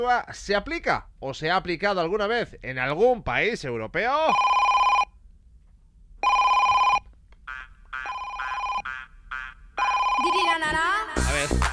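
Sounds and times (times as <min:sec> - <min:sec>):
speech: 0:00.0 - 0:04.6
phone ringtone playing a repeating electronic melody: 0:04.3 - 0:05.1, 0:06.2 - 0:07.0, 0:08.0 - 0:09.0, 0:09.8 - 0:10.6.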